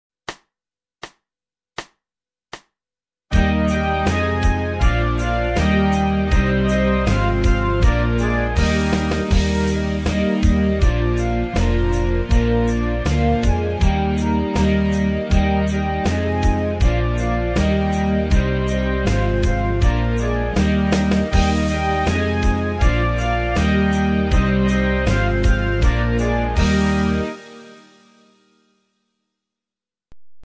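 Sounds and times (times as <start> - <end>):
keyboard solo of an English folk song: 3.4 - 27.7.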